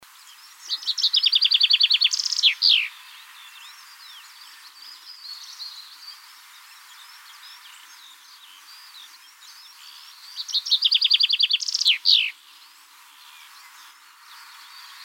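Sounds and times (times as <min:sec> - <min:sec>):
common chaffinch singing: 0:00.2 - 0:15.0
faint high chirps from other birds: 0:00.6 - 0:06.3, 0:07.2 - 0:15.0.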